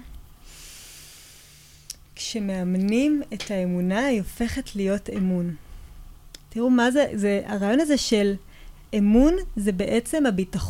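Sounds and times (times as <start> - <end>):
slow deep breath into a microphone: 0.4 - 1.9
speech: 2.2 - 5.6, 6.5 - 10.6.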